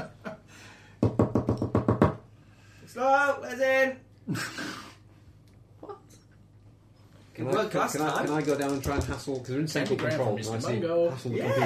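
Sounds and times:
firm knocking on a door: 1.0 - 2.2
speech: 3.0 - 4.7, 7.4 - 11.6.

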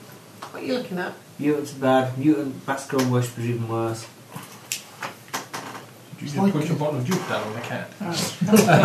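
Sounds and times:
speech: 0.6 - 4.4, 6.2 - 8.8
wooden chair creaking and coming apart: 4.3 - 6.1, 7.0 - 8.0
laughter: 8.2 - 8.8.

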